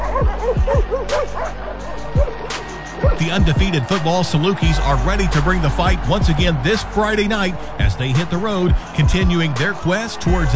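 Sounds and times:
dog barking: 0:00.0 - 0:03.2
speech: 0:03.2 - 0:10.5.

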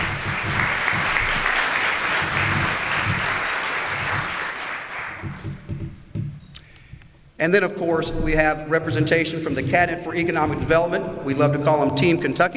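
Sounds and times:
audience applause at a Kentucky workforce event: 0:00.0 - 0:05.8
speech: 0:07.4 - 0:12.5.

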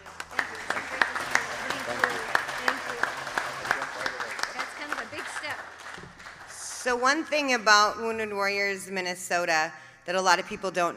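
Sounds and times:
small audience clapping at the presentation of a check: 0:00.0 - 0:07.2
speech: 0:06.9 - 0:10.9.

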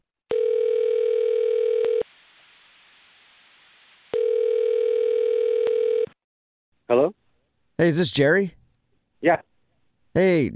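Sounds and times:
steady telephone dial tone: 0:00.3 - 0:02.1, 0:04.1 - 0:06.1
telephone line noise hiss: 0:02.1 - 0:04.2
speech: 0:07.8 - 0:08.6, 0:09.2 - 0:09.5, 0:10.1 - 0:10.5.

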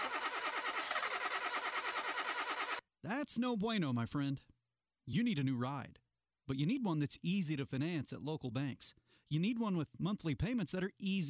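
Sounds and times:
car engine cranking without catching: 0:00.0 - 0:02.8
speech: 0:03.0 - 0:04.5, 0:05.1 - 0:11.2.

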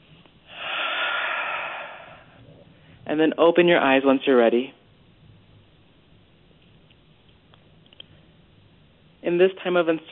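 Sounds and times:
person breathing slowly during guided meditation: 0:00.5 - 0:03.0
speech: 0:03.1 - 0:04.8, 0:09.4 - 0:10.1.

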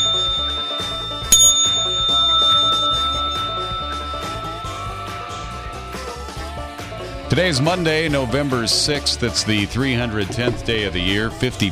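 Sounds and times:
bright bell ringing: 0:00.0 - 0:09.0
music: 0:00.0 - 0:11.7
speech: 0:07.3 - 0:11.7.

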